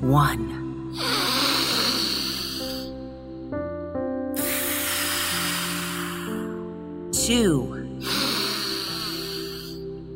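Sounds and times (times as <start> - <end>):
speech: 0.0 - 1.3, 7.3 - 7.8
deep breath in and out during a guided breathing exercise: 0.9 - 3.2, 4.4 - 6.8, 8.0 - 10.0.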